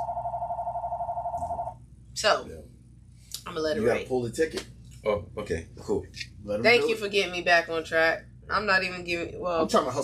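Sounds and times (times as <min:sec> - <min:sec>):
telephone ringing with an electronic warbling trill in a closed restaurant: 0:00.0 - 0:01.7
low hum: 0:00.0 - 0:10.0
speech: 0:02.2 - 0:02.6, 0:03.5 - 0:10.0.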